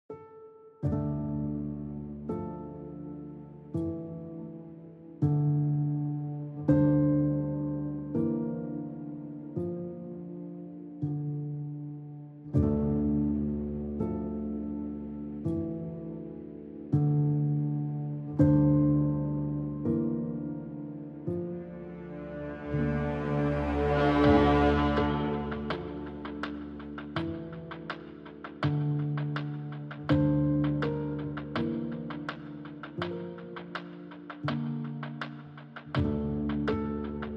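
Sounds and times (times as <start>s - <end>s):
piano: 0.0s - 37.3s
drums: 24.2s - 37.3s.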